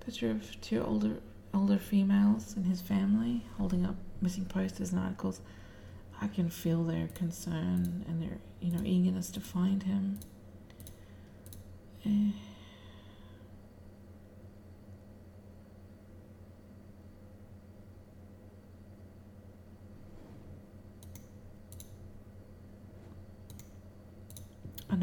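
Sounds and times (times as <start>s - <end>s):
speech: 0.0s - 5.6s, 6.2s - 10.3s, 12.0s - 12.5s
computer mouse clicking while browsing a photo library: 10.2s - 11.7s, 21.0s - 22.0s, 23.4s - 24.9s.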